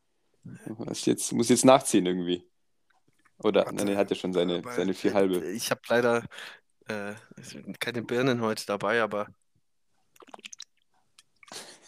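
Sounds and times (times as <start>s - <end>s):
speech: 0.5s - 2.5s, 3.4s - 9.4s
person sipping and gulping lukewarm water from a bottle: 10.1s - 11.8s.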